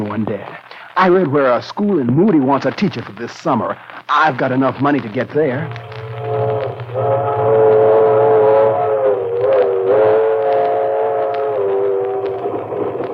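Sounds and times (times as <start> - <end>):
speech: 0.1 - 5.9
train rumbling: 5.6 - 13.1.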